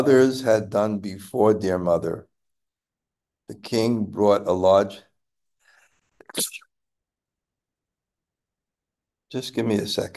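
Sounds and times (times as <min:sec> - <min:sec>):
speech: 0:00.0 - 0:02.3, 0:03.5 - 0:05.1, 0:06.3 - 0:06.6, 0:09.3 - 0:10.1
person sneezing: 0:06.2 - 0:06.6.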